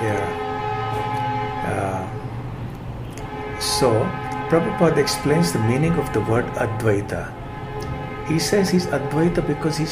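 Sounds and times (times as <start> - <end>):
train horn from a railway track in India: 0.0 - 2.3, 3.2 - 9.9
speech: 3.8 - 7.4, 8.3 - 9.9.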